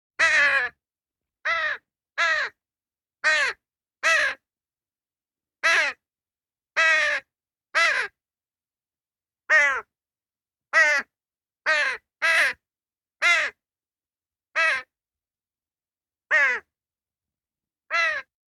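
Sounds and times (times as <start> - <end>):
crow: 0.2 - 0.8, 1.4 - 2.6, 3.2 - 4.5, 5.6 - 6.0, 6.7 - 8.2, 9.4 - 9.9, 10.7 - 12.6, 13.2 - 13.6, 14.5 - 15.0, 16.3 - 16.7, 17.9 - 18.4.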